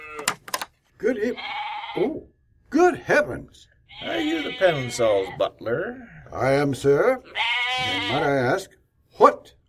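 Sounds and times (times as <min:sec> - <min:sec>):
goat bleating: 0:00.0 - 0:00.4, 0:01.2 - 0:02.2, 0:03.9 - 0:06.2, 0:07.2 - 0:08.5
speech: 0:01.0 - 0:09.4.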